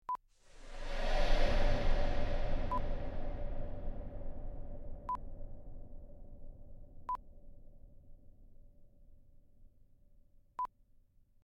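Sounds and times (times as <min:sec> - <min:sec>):
long ghostly whoosh: 0:00.4 - 0:08.9.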